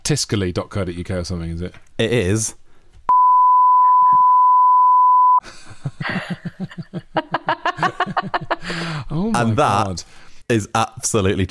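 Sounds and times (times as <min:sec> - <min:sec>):
speech: 0:00.1 - 0:02.6, 0:05.8 - 0:11.4
pure-tone censor bleep: 0:03.1 - 0:05.4
bursts of rhythmic laughter: 0:05.4 - 0:09.0.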